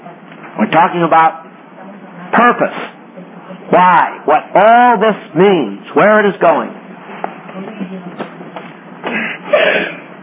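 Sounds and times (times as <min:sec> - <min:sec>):
speech: 0:00.6 - 0:01.4, 0:02.4 - 0:03.0, 0:03.7 - 0:06.8
person clearing throat in rough raspy bursts: 0:09.0 - 0:10.1.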